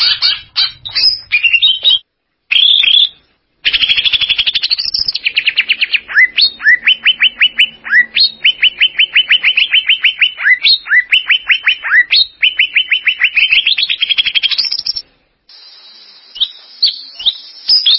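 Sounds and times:
champion greater green leafbird singing: 0.0s - 17.9s.

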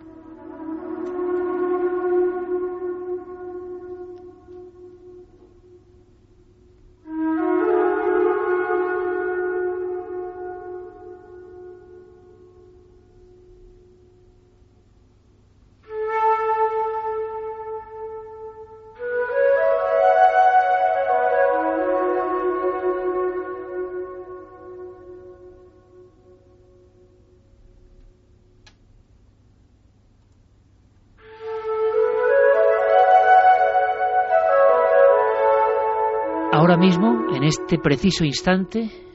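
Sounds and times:
flute echoing inside a pyramid chamber: 0.0s - 6.0s, 7.0s - 12.2s, 15.8s - 26.3s, 31.2s - 38.6s
speech: 36.8s - 39.1s.

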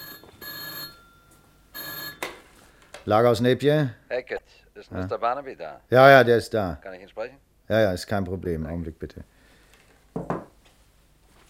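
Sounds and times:
telephone ringing in a night watchman's office: 0.0s - 2.6s
speech: 3.1s - 9.4s.

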